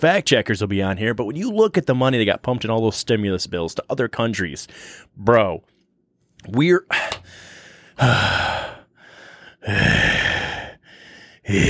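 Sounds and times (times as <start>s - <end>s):
speech: 0.0s - 5.7s, 6.4s - 8.7s, 9.6s - 10.3s, 11.5s - 11.6s
heavy rasping breathing: 6.9s - 11.6s.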